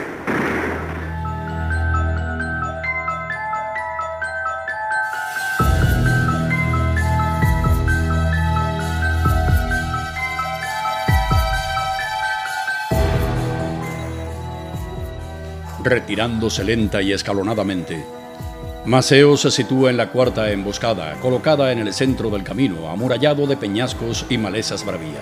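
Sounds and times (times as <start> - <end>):
deep booming cannon shots: 0.0 - 1.4
dramatic orchestral music: 0.0 - 25.2
speech: 15.9 - 18.2, 18.8 - 25.2.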